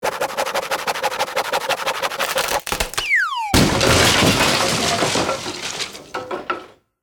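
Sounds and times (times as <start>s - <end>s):
comedy saw cutting floor fast: 0.0s - 6.4s
comedy fall: 2.2s - 6.8s.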